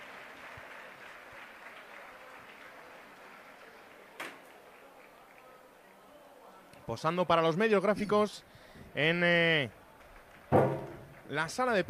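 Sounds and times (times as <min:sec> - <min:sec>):
crowd of football fans applauding in an ovation at a player presentation: 0:00.0 - 0:06.1, 0:09.8 - 0:11.8
speech: 0:06.9 - 0:09.8, 0:11.3 - 0:11.8
sharp knock or bump: 0:10.5 - 0:11.1.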